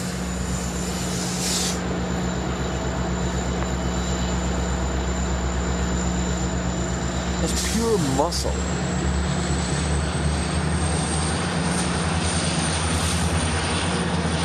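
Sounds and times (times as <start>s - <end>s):
sharp hiss of air: 0.0s - 1.8s
train idling and rumbling: 0.0s - 14.4s
speech: 7.8s - 8.8s.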